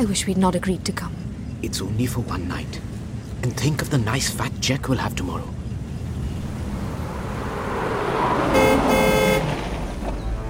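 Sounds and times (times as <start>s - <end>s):
speech: 0.0s - 5.6s
car engine rumbling as it slows down approaching a gateway: 2.6s - 10.4s
sustained car horn toot: 8.5s - 9.8s.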